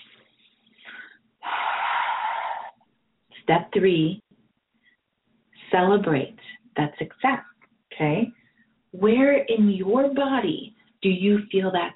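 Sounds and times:
deep inhale during a guided relaxation exercise: 0:00.7 - 0:02.8
speech: 0:03.5 - 0:04.2, 0:05.7 - 0:11.9.

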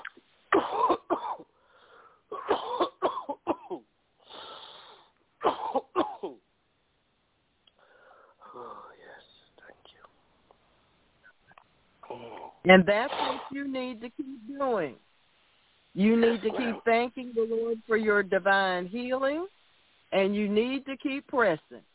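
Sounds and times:
person coughing harshly: 0:00.6 - 0:01.5, 0:02.3 - 0:03.8, 0:05.4 - 0:06.4, 0:16.3 - 0:16.8
long deep inhale: 0:01.6 - 0:02.3, 0:04.2 - 0:05.2, 0:07.8 - 0:08.9
soft breathy whispery sounds: 0:07.7 - 0:10.2
speech: 0:12.7 - 0:15.0, 0:16.0 - 0:19.5, 0:20.1 - 0:21.9.

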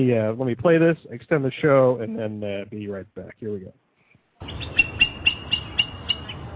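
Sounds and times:
speech: 0:00.0 - 0:03.8, 0:04.4 - 0:05.0
eagle parents crying out in high piercing calls: 0:04.4 - 0:06.4.

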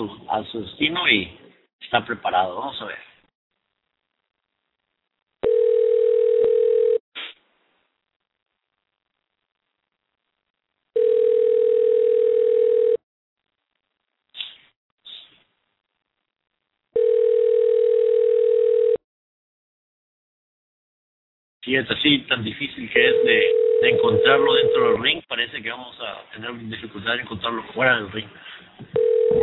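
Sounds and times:
speech: 0:00.0 - 0:03.1, 0:21.7 - 0:29.4
telephone ringback tone while a call waits to be answered: 0:05.4 - 0:07.0, 0:11.0 - 0:13.0, 0:17.0 - 0:19.0, 0:23.0 - 0:25.0, 0:29.0 - 0:29.4.

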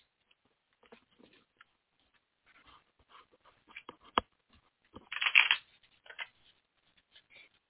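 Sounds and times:
deck of cards being shuffled: 0:05.0 - 0:06.4.

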